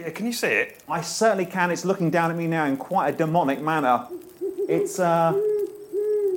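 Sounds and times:
speech: 0.0s - 5.5s
owl hooting: 3.4s - 6.3s
owl harsh raspy call: 4.0s - 6.3s.

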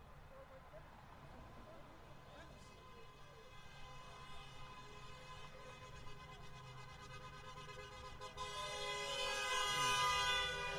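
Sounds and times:
Range Rover car horn honking on Sunset Boulevard in Hollywood: 5.8s - 10.7s.

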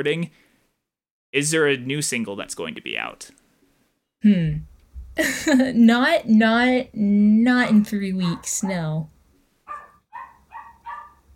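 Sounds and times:
speech: 0.0s - 0.5s, 1.3s - 3.4s, 4.2s - 9.1s
puppy barking: 8.2s - 8.8s, 9.7s - 11.3s.

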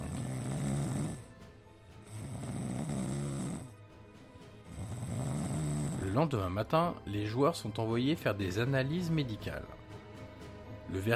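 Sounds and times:
football team members snoring asleep on a plane: 0.0s - 1.4s, 2.0s - 3.9s, 4.6s - 6.3s
speech: 6.2s - 9.8s, 10.9s - 11.1s.

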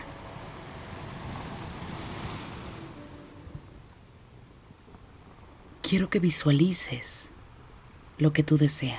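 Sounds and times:
ocean waves breaking on a shore: 0.0s - 5.7s
faint breeze: 0.0s - 8.9s
speech: 5.9s - 7.3s, 8.2s - 8.9s.

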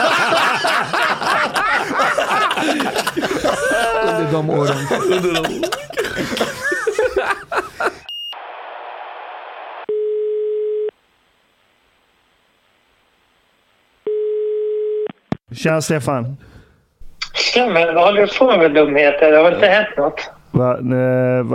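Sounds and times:
people laughing: 0.0s - 8.1s
speech: 4.3s - 6.5s, 15.6s - 16.6s, 17.5s - 21.5s
steady electronic telephone queue tone: 9.9s - 10.9s, 14.1s - 15.1s.

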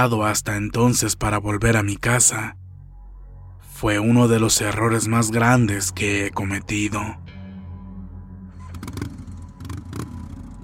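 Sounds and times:
speech: 0.0s - 2.6s, 3.8s - 7.3s
motorcycle engine starting, idling and revving: 8.6s - 10.6s.

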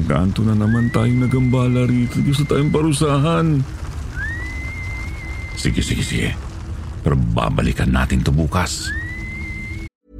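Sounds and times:
low rumbling background: 0.0s - 9.9s
speech: 0.1s - 3.8s, 5.6s - 6.4s, 7.0s - 9.0s
thin eerie whistle: 0.4s - 6.1s, 8.6s - 9.9s.

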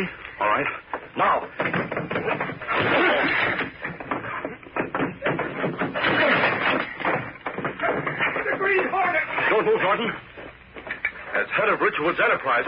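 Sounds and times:
speech: 0.0s - 3.6s, 9.6s - 10.3s, 11.4s - 12.6s
heavy thumps: 0.8s - 11.2s
wood splintering and clattering: 0.8s - 11.2s
old wooden door forced open by shoulders: 1.2s - 9.7s.

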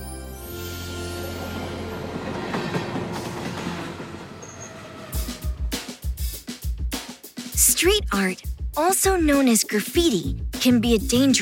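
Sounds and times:
subway train rumbling along the rails: 0.6s - 6.2s
speech: 7.8s - 11.4s.

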